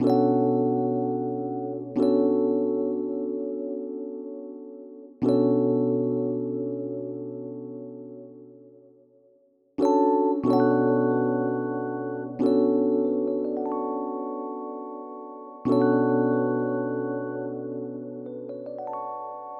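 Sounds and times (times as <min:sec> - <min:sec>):
D electric piano loop: 0:00.0 - 0:08.6, 0:09.8 - 0:19.5.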